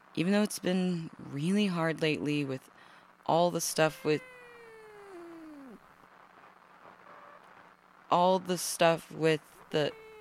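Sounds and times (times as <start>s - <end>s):
speech: 0.2s - 4.3s, 8.1s - 10.0s
cat meowing: 3.8s - 5.8s.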